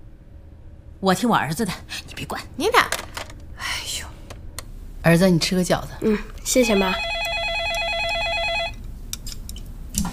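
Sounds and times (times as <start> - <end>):
speech: 1.0 - 3.0, 5.0 - 7.2
telephone ringing with a warbling electronic trill: 6.6 - 8.8.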